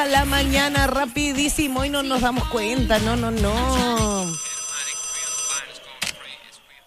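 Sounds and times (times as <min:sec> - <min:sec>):
speech: 0:00.1 - 0:04.5
telephone ringing with a bright buzzing tone: 0:03.9 - 0:06.8.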